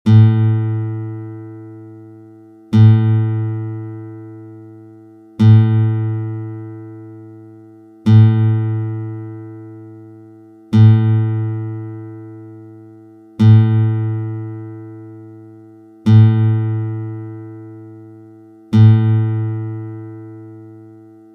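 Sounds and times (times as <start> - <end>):
classical guitar strings: 0.1 - 21.3.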